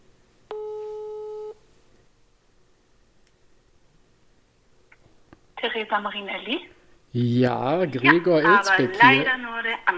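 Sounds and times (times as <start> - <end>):
telephone ringback tone on speakerphone: 0.5 - 1.6
speech: 5.7 - 9.9.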